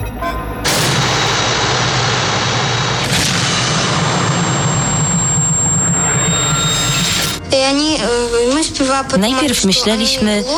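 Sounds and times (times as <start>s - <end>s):
machine gun fire: 0.6s - 7.4s
speech: 7.7s - 10.5s.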